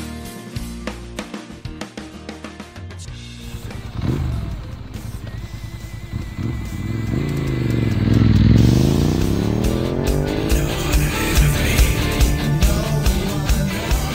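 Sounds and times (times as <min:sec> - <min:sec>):
motorcycle engine revving and rumbling: 0:03.4 - 0:14.1.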